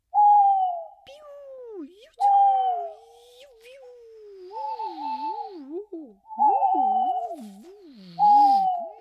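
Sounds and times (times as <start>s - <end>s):
nocturnal birds hooting at night in a forest: 0.1s - 1.0s, 2.2s - 3.2s, 4.2s - 8.9s.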